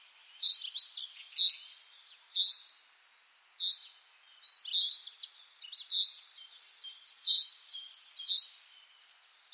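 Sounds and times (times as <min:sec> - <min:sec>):
common chaffinch Fringilla coelebs calling: 0:00.4 - 0:02.8, 0:03.6 - 0:08.7.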